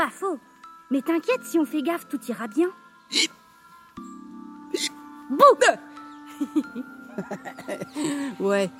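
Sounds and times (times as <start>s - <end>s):
speech: 0.0s - 3.4s, 5.3s - 8.7s
person hiccuping: 3.1s - 3.4s, 4.7s - 5.0s
laughter: 6.3s - 8.2s.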